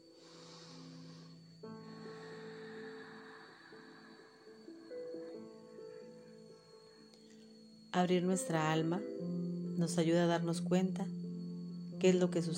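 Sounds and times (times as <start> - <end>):
slow deep breath in and out: 0.0 - 5.6
calm music with sustained gentle tones: 0.0 - 12.5
speech: 8.0 - 9.2, 9.8 - 11.2, 12.0 - 12.5.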